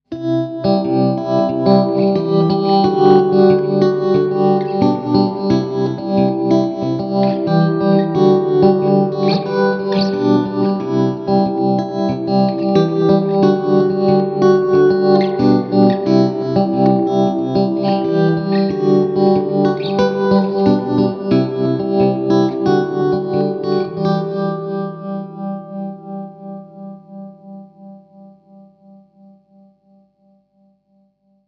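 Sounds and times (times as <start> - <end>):
clean guitar tremolo effect: 0.6 - 25.9.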